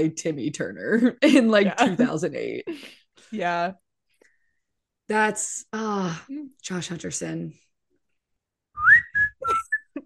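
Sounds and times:
speech: 0.0s - 3.8s, 5.1s - 7.6s
person whistling clear notes: 8.8s - 10.0s.

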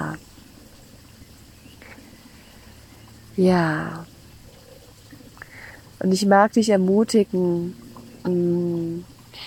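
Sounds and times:
brief faint bird-like chirp: 0.0s - 6.3s, 7.0s - 9.4s
continuous rush of flowing water: 0.0s - 9.4s
speech: 3.4s - 4.1s, 6.0s - 8.6s.

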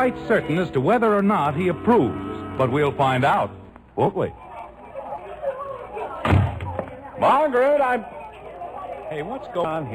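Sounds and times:
speech: 0.0s - 4.4s, 7.2s - 8.2s, 9.1s - 9.9s
murmured voices: 0.0s - 9.9s
front door swinging shut with a heavy thud: 6.2s - 6.8s.

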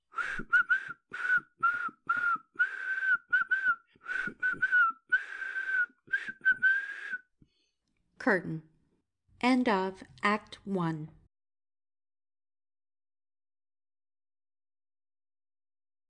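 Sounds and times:
person whistling an anthem off-key: 0.1s - 7.3s
speech: 8.2s - 8.7s, 9.4s - 11.2s.

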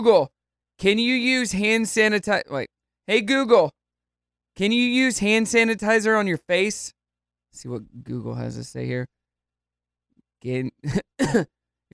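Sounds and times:
speech: 0.0s - 3.8s, 4.6s - 9.2s, 10.4s - 11.9s
person coughing into the microphone: 10.9s - 11.5s.

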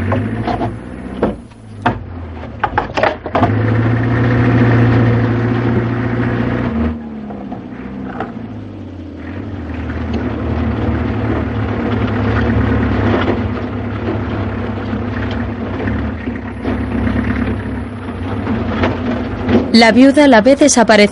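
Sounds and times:
sharp knocks and clatters: 0.0s - 3.8s, 7.2s - 8.6s, 9.2s - 20.0s
engines of two approaching motor vehicles rumbling: 0.0s - 21.0s
speech: 19.8s - 21.0s.

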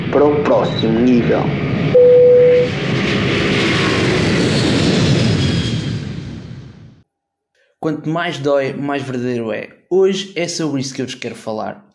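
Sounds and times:
airplane taking off with engine roar: 0.0s - 7.0s
speech: 0.1s - 1.9s, 7.8s - 11.9s
brief steady tone: 2.0s - 2.8s.

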